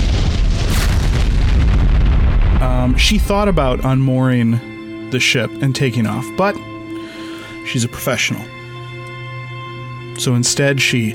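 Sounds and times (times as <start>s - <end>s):
enormous explosion: 0.0s - 4.1s
speech: 2.9s - 6.7s, 7.7s - 8.6s, 10.2s - 11.1s.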